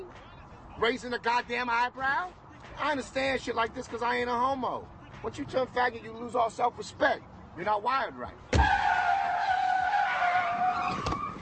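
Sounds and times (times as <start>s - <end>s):
speech: 0.8s - 8.8s
car tires squealing in a long high-pitched skid: 8.5s - 11.4s.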